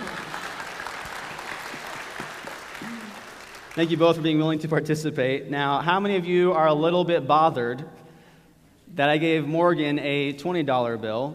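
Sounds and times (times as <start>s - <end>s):
room full of people applauding: 0.0s - 4.0s
speech: 3.8s - 8.0s, 9.0s - 11.3s.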